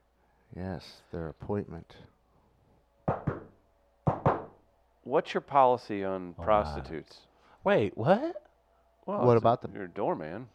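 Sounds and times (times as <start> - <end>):
speech: 0.5 - 2.2, 5.0 - 8.4, 9.0 - 10.5
doorman knocking on a door: 3.0 - 4.6.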